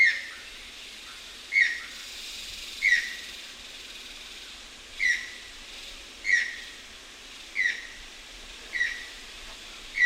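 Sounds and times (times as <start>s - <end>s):
Channel-billed Toucan clipped yelping calls: 1.5s - 2.0s, 2.8s - 3.3s, 5.0s - 5.5s, 6.2s - 6.8s, 7.6s - 8.0s, 8.7s - 9.2s.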